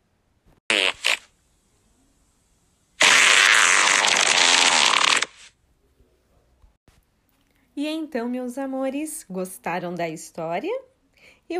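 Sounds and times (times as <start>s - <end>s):
cartoonish fart sound effect: 0.7s - 1.3s, 3.0s - 5.5s
speech: 7.8s - 10.9s.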